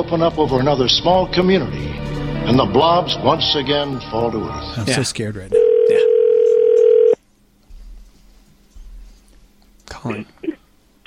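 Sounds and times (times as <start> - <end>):
speech: 0.0 - 6.2, 10.0 - 10.3
voice: 4.8 - 6.1
low hum on a quiet phone line: 4.8 - 7.2
steady telephone tone while placing a call: 5.6 - 7.2.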